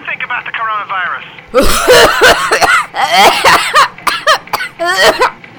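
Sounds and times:
speech: 0:00.3 - 0:03.6
woman coughing: 0:01.5 - 0:05.4.

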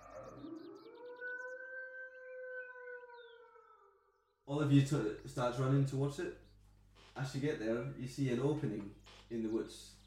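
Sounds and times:
distant wolf howl: 0:00.0 - 0:05.9
faint bird chirps: 0:00.0 - 0:10.0
speech: 0:04.5 - 0:06.4, 0:07.2 - 0:10.0.

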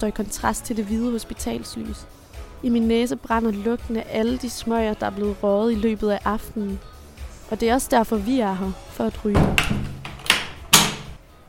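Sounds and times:
speech: 0:00.0 - 0:06.9, 0:07.5 - 0:09.8
small toilet door slamming shut: 0:09.3 - 0:11.2.

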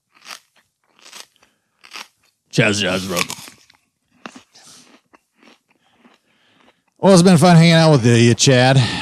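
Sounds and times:
crunchy bites and chewing of a gordita: 0:00.0 - 0:07.0
speech: 0:02.6 - 0:03.4, 0:07.0 - 0:09.0.

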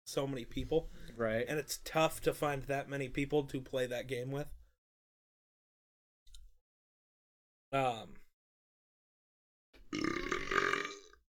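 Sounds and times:
speech: 0:00.1 - 0:04.6, 0:07.7 - 0:08.2
person burping after drinking Crown Apple with Pepsi: 0:09.9 - 0:11.2.

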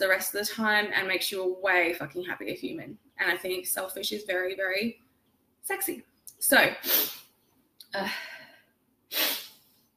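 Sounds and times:
speech: 0:00.0 - 0:05.0, 0:05.6 - 0:07.2, 0:07.9 - 0:08.4
pregnant woman sneezing: 0:06.7 - 0:07.3.

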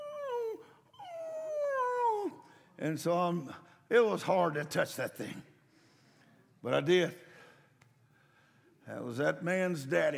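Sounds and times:
person imitating a dog whimpering: 0:00.0 - 0:02.4
speech: 0:02.8 - 0:05.5, 0:06.6 - 0:07.2, 0:08.9 - 0:10.1.

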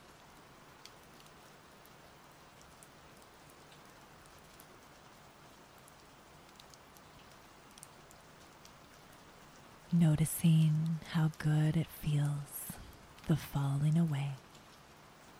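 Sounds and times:
steady rain spattering on a surface: 0:00.0 - 0:15.3
speech: 0:09.9 - 0:12.6, 0:13.3 - 0:14.4.

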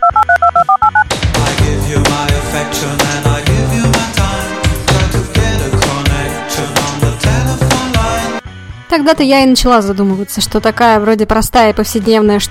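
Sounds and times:
telephone keypad tones as a number is dialed: 0:00.0 - 0:01.1
loud full music: 0:01.1 - 0:08.9
speech: 0:09.0 - 0:12.4.

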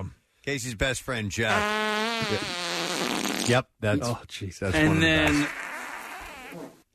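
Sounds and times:
speech: 0:00.0 - 0:05.6
recorded fart sound effect: 0:01.5 - 0:03.6, 0:05.2 - 0:06.8.

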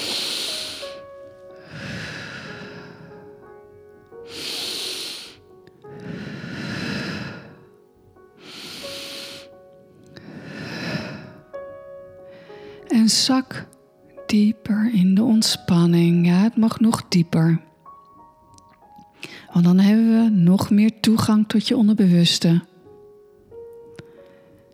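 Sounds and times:
person breathing deeply in through the nose during guided relaxation meditation: 0:00.0 - 0:03.3, 0:04.3 - 0:07.6, 0:08.4 - 0:09.6, 0:10.2 - 0:11.4, 0:19.2 - 0:19.5
quiet sustained music: 0:00.0 - 0:24.7
speech: 0:13.0 - 0:13.7, 0:14.3 - 0:17.7, 0:19.6 - 0:22.7.

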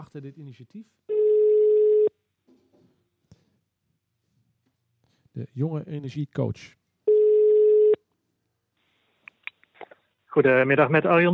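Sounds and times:
speech: 0:00.1 - 0:01.2, 0:05.4 - 0:06.8, 0:10.3 - 0:11.3
telephone ringback tone while placing a call: 0:01.1 - 0:02.1, 0:07.1 - 0:08.0.

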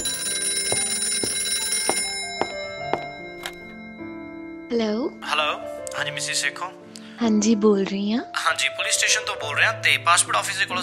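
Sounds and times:
telephone ringing with a high tinny bell tone: 0:00.0 - 0:04.6
speech: 0:04.7 - 0:10.8.

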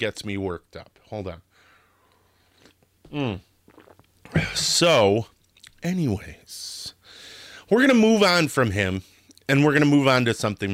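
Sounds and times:
speech: 0:00.0 - 0:01.5, 0:03.1 - 0:03.5, 0:04.3 - 0:10.7
soft mouth noises: 0:02.1 - 0:04.8
slurping sip of coffee: 0:02.5 - 0:04.8.

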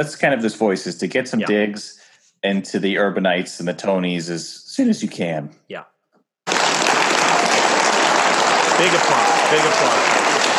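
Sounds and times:
speech: 0:00.0 - 0:05.9, 0:08.8 - 0:10.0
loud sustained applause from a large crowd: 0:06.5 - 0:10.5.

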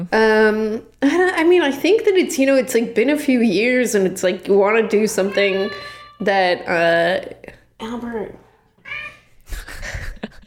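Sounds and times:
speech: 0:00.0 - 0:08.4
cat meowing: 0:05.1 - 0:06.3, 0:08.8 - 0:09.3.

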